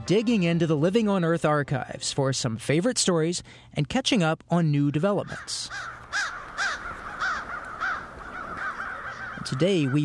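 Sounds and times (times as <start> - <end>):
speech: 0.1 - 6.4, 9.4 - 10.0
crows giving harsh caws: 5.2 - 10.0.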